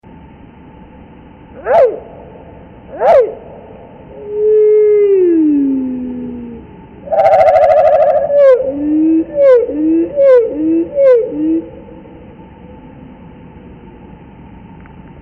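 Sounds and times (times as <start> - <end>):
Eastern Towhee: 1.6 - 12.9.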